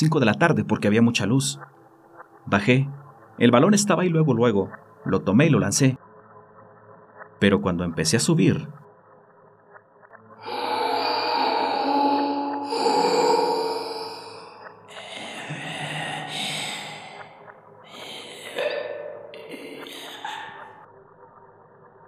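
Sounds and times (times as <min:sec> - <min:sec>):
speech: 0:00.0 - 0:01.8, 0:02.5 - 0:06.0, 0:07.4 - 0:08.8
eerie heavy breathing from an open drainage pipe: 0:10.4 - 0:18.7.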